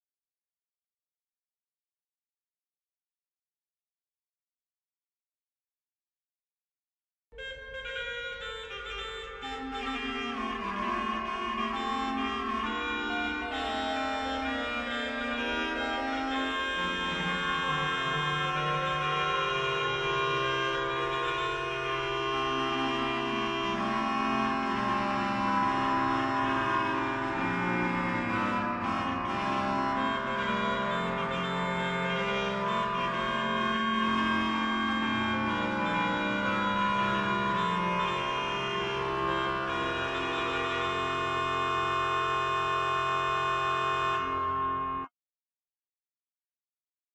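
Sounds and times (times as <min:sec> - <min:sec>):
baroque organ music: 0:07.4 - 0:45.1.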